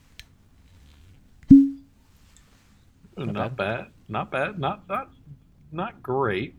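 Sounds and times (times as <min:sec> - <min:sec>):
cork popping from a bourbon bottle: 0:01.5 - 0:01.8
speech: 0:03.2 - 0:06.5.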